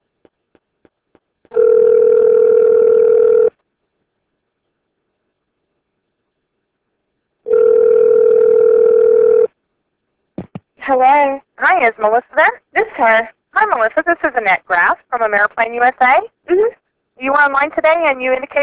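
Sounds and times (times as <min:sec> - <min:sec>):
telephone dial tone: 0:01.5 - 0:03.5, 0:07.5 - 0:09.5
speech: 0:11.8 - 0:18.6.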